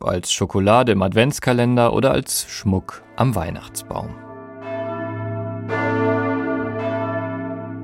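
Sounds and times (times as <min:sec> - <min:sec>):
speech: 0:00.0 - 0:04.2
large bells ringing: 0:02.4 - 0:07.8.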